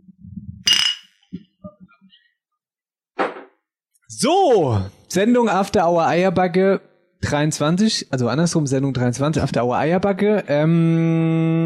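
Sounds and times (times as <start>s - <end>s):
glasses clinking in a toast: 0.7s - 1.1s
speech: 4.1s - 11.6s.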